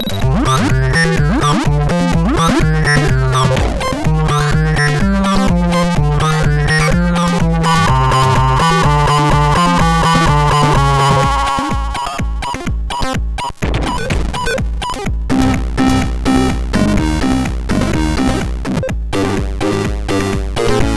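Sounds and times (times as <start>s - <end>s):
chiptune music on MOS6581R2 SID chip: 0.0s - 20.9s.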